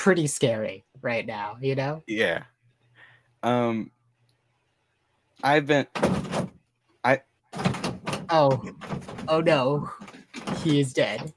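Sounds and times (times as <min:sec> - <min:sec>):
speech: 0:00.0 - 0:02.5, 0:03.4 - 0:04.0, 0:05.4 - 0:11.3
door creaking: 0:05.8 - 0:06.6, 0:07.5 - 0:11.3.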